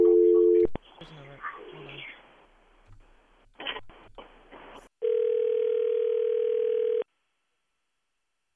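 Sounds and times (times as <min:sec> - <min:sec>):
telephone dial tone while a number is being called: 0:05.0 - 0:07.0.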